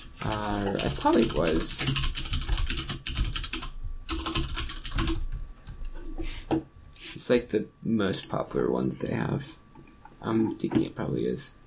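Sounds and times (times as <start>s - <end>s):
typing on an ergonomic computer keyboard: 0.0s - 5.9s, 9.0s - 11.0s
speech: 0.2s - 2.2s, 7.3s - 9.6s, 10.2s - 11.6s.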